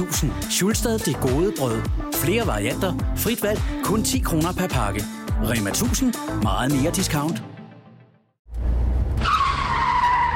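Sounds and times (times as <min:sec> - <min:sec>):
speech: 0:00.0 - 0:07.5
car tires skidding: 0:08.6 - 0:10.3.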